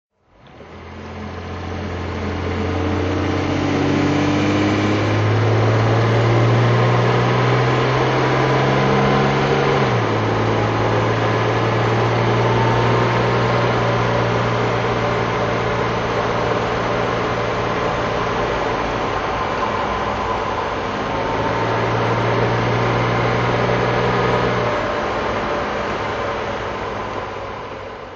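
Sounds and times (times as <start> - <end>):
Jaguar Mk2 34 auto car engine driving: 0.3 - 28.1.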